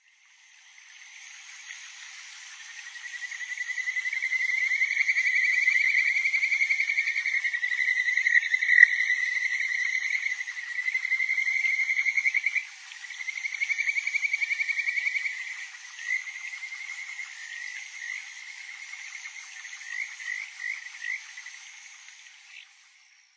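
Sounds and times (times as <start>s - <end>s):
kajika frog calling: 2.7s - 21.6s.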